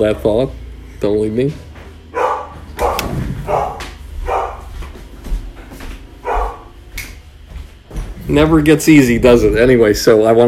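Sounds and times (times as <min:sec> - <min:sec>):
speech: 0:00.0 - 0:01.7, 0:08.3 - 0:10.4
dog barking: 0:02.1 - 0:04.7, 0:06.2 - 0:06.8.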